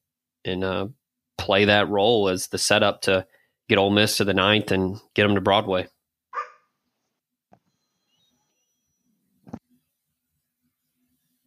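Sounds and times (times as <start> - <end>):
speech: 0.4 - 5.9
dog barking: 6.3 - 6.8.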